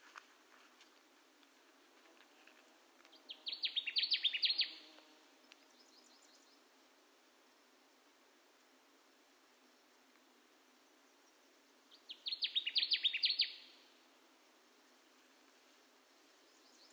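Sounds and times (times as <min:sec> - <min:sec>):
Connecticut warbler singing: 0:03.1 - 0:04.8, 0:11.9 - 0:13.7.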